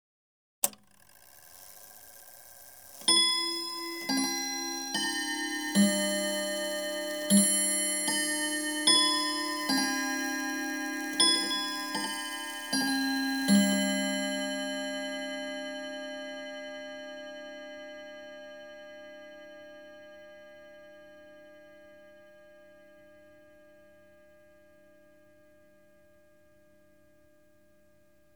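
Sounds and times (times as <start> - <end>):
domestic chiming clock three-quarter hour chime: 0.6 - 17.5.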